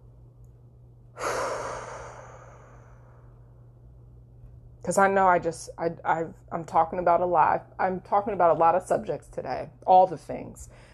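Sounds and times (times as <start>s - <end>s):
faint steady low hum: 0.0s - 10.9s
deep breath: 1.1s - 3.5s
speech: 4.9s - 10.9s.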